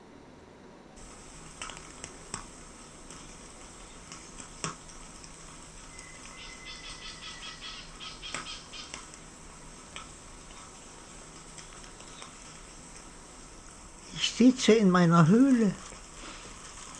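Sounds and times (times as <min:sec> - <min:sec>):
steady low hiss: 0:00.0 - 0:16.9
faint fluttering and rustling outdoors at night: 0:01.0 - 0:16.9
scurrying patter: 0:01.0 - 0:16.9
soft crackles: 0:01.0 - 0:16.9
speech: 0:14.4 - 0:15.8.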